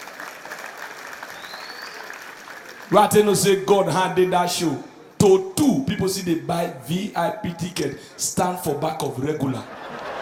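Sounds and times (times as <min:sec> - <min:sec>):
audience applause: 0:00.0 - 0:03.1
speech: 0:02.9 - 0:09.8
laughter: 0:09.4 - 0:10.2.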